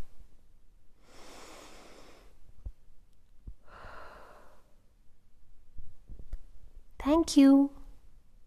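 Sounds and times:
long deep breath during a mindful listening exercise: 1.0s - 2.4s, 3.6s - 4.8s
speech: 7.1s - 7.8s.

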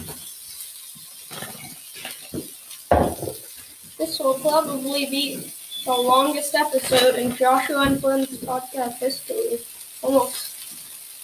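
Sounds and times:
burger patties sizzling in a hot pan: 0.0s - 11.2s
soft thuds and clatters of patties being moved or pressed: 2.3s - 3.4s
speech: 4.0s - 10.5s.

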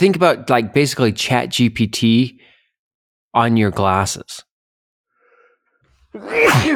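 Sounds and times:
speech: 0.0s - 2.5s, 3.4s - 4.5s, 6.1s - 6.7s
person sneezing: 6.2s - 6.7s.

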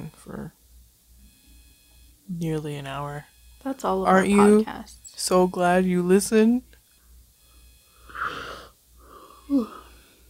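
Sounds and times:
speech: 2.4s - 6.7s, 9.5s - 9.8s
person yawning: 8.1s - 10.1s
low groan at end of a yawn: 8.1s - 10.2s.

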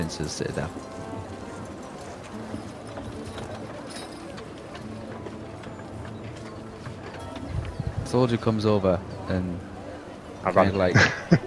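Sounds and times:
speech: 0.0s - 1.0s, 8.1s - 9.7s, 10.4s - 11.4s
horse-drawn carriage hooves clip-clopping on narrow streets: 0.0s - 9.1s
laughter: 10.6s - 11.4s.

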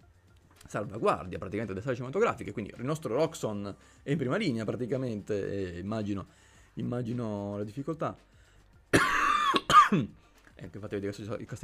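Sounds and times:
speech: 0.7s - 8.3s, 9.9s - 11.6s
harsh hacking coughing: 8.9s - 10.2s.

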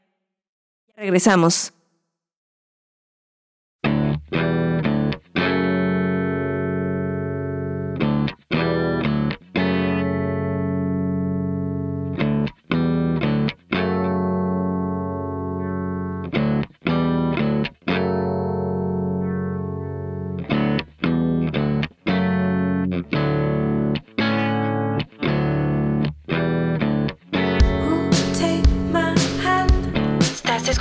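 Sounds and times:
speech: 1.0s - 1.8s
heavy distorted guitar chords in a music track on the radio: 3.8s - 30.8s.

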